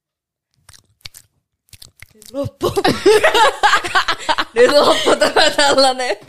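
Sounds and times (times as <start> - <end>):
wet mouth-smacking while chewing blue cheese: 0.5 - 2.6
speech: 2.2 - 6.2
laughter: 2.6 - 6.2.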